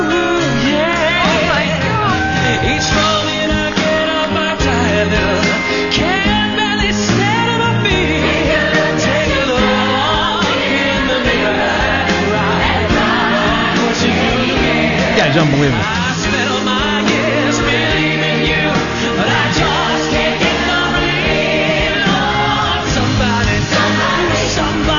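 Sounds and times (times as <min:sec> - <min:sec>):
male singer singing live: 0:00.0 - 0:08.3, 0:15.1 - 0:19.9, 0:22.7 - 0:24.9
keyboard accompaniment: 0:00.0 - 0:24.9
voices singing a soaring sustained melody: 0:00.0 - 0:24.9.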